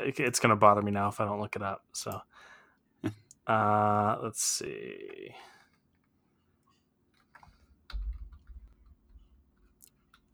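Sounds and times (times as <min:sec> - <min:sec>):
speech: 0:00.0 - 0:05.5
typing on a computer keyboard: 0:07.9 - 0:09.0.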